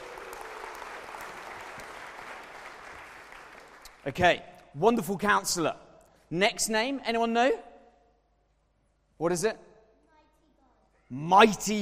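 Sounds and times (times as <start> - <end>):
audience clapping: 0.0 - 4.3
speech: 4.0 - 7.7, 9.2 - 9.6, 11.1 - 11.8.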